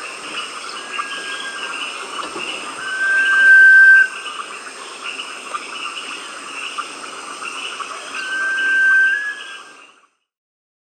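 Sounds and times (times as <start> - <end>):
constant hum of insects and frogs in Peru: 0.0 - 10.1
Sunbittern (Eurypyga helias) giving a long pure steady whistle in Peru: 2.8 - 4.2, 8.1 - 9.7.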